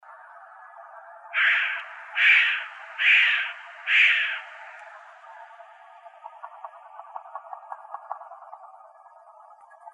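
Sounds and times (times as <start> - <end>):
Williamson's sapsucker giving a harsh nasal squeal in Arizona: 1.4 - 4.4.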